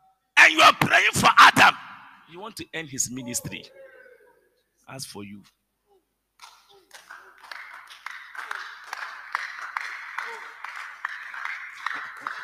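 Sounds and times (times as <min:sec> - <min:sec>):
speech: 0:00.6 - 0:03.9, 0:04.9 - 0:05.6
congregation clapping: 0:06.4 - 0:12.4.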